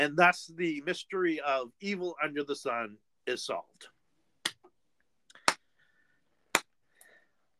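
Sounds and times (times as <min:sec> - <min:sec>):
speech: 0:00.0 - 0:03.9
slow hand claps: 0:05.3 - 0:05.7, 0:06.5 - 0:06.8.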